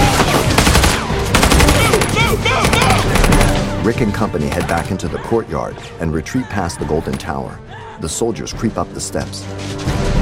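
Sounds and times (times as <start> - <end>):
automatic gunfire raking soldiers: 0.2 - 3.7
speech: 3.9 - 10.0.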